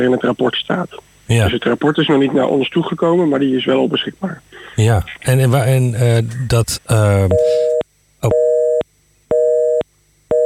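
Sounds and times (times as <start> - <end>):
speech: 0.0 - 8.5
telephone busy tone after a dropped call: 7.3 - 10.4.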